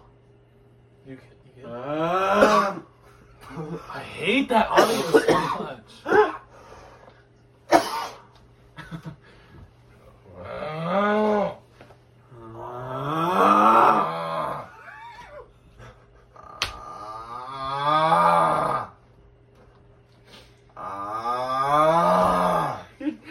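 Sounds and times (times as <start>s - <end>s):
speech: 1.0s - 2.2s, 4.1s - 6.2s
loud groaning snores: 10.2s - 11.6s, 12.3s - 14.7s, 16.4s - 19.0s, 20.8s - 22.9s.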